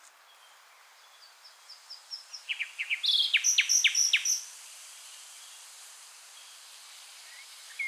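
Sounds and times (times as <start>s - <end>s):
common nightingale Luscinia megarhynchos singing: 0.3s - 4.4s.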